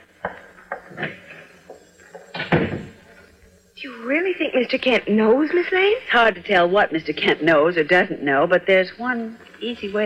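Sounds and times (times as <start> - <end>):
powder room door closing thud: 2.4 - 3.0
speech: 4.3 - 10.0.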